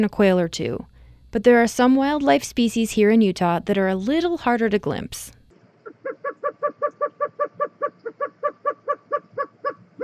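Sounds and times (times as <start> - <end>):
speech: 0.0 - 5.4
roadrunner call: 5.8 - 10.0.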